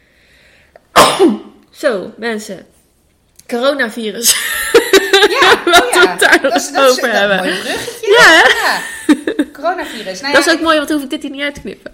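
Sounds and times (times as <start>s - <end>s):
person sneezing: 0.9s - 1.6s
speech: 1.8s - 2.8s, 3.5s - 4.6s, 5.2s - 11.9s
laughter: 4.3s - 10.1s.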